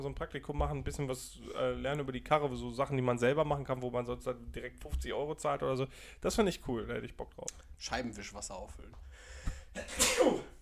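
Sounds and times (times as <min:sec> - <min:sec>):
speech: 0:00.0 - 0:09.1, 0:09.8 - 0:10.5
sneeze: 0:09.8 - 0:10.5.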